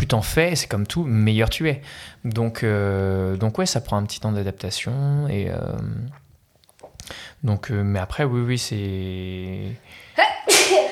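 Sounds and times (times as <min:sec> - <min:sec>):
speech: 0:00.1 - 0:06.2, 0:07.1 - 0:10.3
single loud explosive sneeze: 0:10.2 - 0:10.8.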